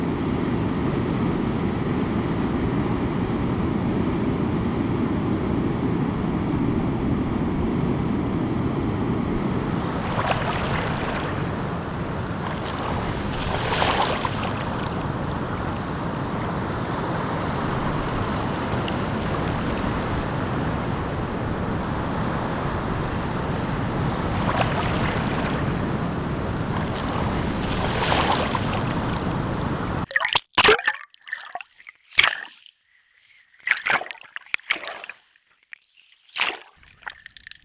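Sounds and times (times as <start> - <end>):
wind noise at the seaside: 0.0 - 30.1
seaside waves and surf breaking: 0.0 - 37.6.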